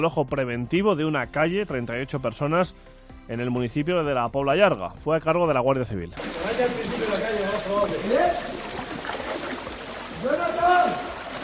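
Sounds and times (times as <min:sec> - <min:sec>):
speech: 0:00.0 - 0:08.6
rushing floodwater roaring through a channel in a ravine: 0:06.2 - 0:11.4.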